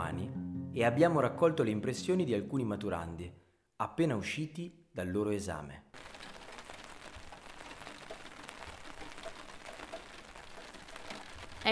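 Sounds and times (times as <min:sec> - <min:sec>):
speech: 0:00.8 - 0:06.1
dense rainfall on a hard surface during a thunderstorm: 0:06.0 - 0:11.7.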